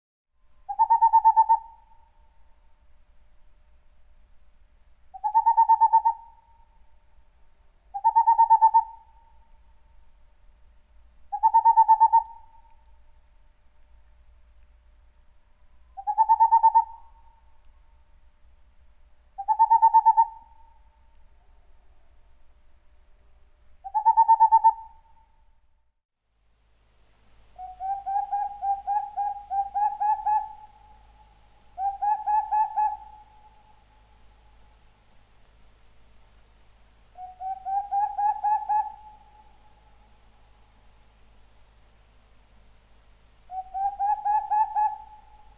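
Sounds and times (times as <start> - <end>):
boreal owl dry snapping call: 0.6 - 2.4, 5.1 - 6.8, 7.9 - 9.6, 11.3 - 12.9, 15.9 - 17.6, 19.4 - 22.2, 23.8 - 25.3, 27.5 - 34.7, 37.1 - 40.7, 43.5 - 45.5.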